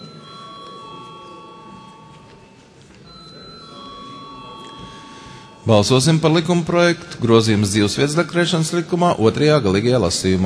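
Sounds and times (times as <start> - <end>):
electric bell ringing in a parliament chamber to call a vote: 0.0 - 6.6
speech: 5.7 - 10.4.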